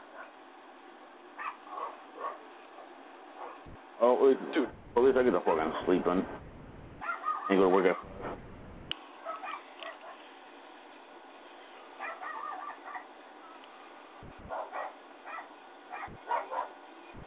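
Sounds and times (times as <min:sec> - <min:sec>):
dog barking next door: 0:00.0 - 0:00.4, 0:01.4 - 0:03.8, 0:05.6 - 0:08.6, 0:09.2 - 0:10.3, 0:12.0 - 0:13.2, 0:14.2 - 0:17.2
quiet hum: 0:00.0 - 0:17.2
speech: 0:04.0 - 0:06.5, 0:07.5 - 0:08.5.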